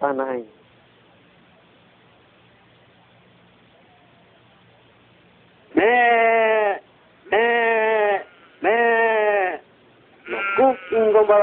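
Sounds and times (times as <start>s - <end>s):
speech: 0.0s - 0.6s
sheep bleating: 5.7s - 11.4s.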